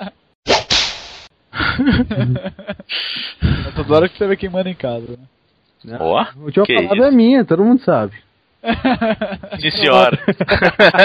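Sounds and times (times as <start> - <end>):
whip cracks: 0.5 - 1.3
laughter: 1.6 - 2.9, 8.6 - 11.0
speech: 1.8 - 11.0.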